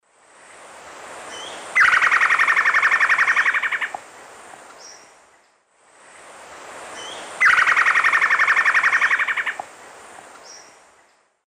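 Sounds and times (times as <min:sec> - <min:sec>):
Myrmeciza melanoceps alarm call in eastern lowlands of South America: 0:01.3 - 0:04.0, 0:07.0 - 0:09.7.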